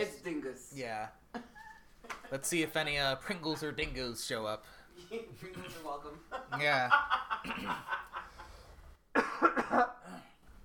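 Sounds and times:
speech: 0.0s - 8.2s, 9.4s - 10.0s
person coughing in a dusty house: 7.4s - 7.9s, 9.1s - 10.4s.

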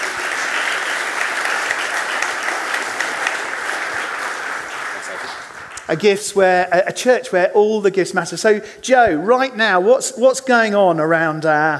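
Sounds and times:
audience applause: 0.0s - 6.2s
speech: 5.9s - 11.7s.

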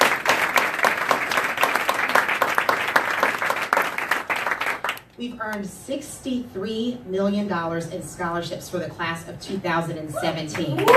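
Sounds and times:
room full of people applauding: 0.0s - 5.0s
speech: 5.2s - 10.9s.

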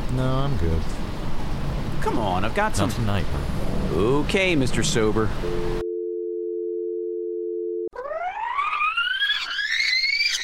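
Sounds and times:
speech: 0.1s - 1.0s, 2.1s - 5.9s
telephone dial tone after hang-up: 5.5s - 7.9s
rising, wavering electronic whine: 7.9s - 10.4s.

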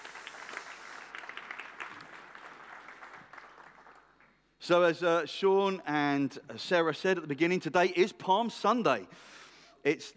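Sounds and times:
room full of people applauding on Palm Sunday: 0.0s - 4.4s
speech: 4.6s - 10.1s.

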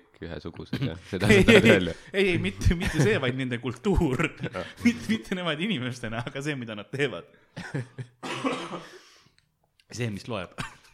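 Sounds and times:
speech: 0.2s - 9.0s, 9.9s - 10.8s
coughing fit with sharp and raspy coughs: 8.2s - 9.2s.

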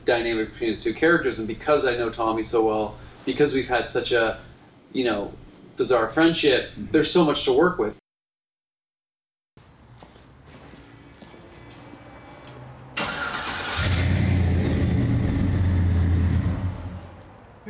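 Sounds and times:
speech: 0.0s - 8.0s
car engine starting by remote start: 12.4s - 17.2s.

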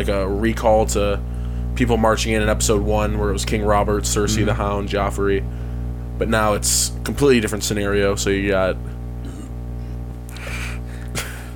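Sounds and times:
speech: 0.0s - 5.6s, 6.2s - 9.0s
steady low hum: 2.7s - 7.1s, 8.8s - 11.5s
man giving a rough drawn-out burp: 4.2s - 4.7s, 9.2s - 9.6s
man giving a short sharp cough: 4.3s - 4.6s, 9.2s - 9.6s, 10.4s - 11.5s.

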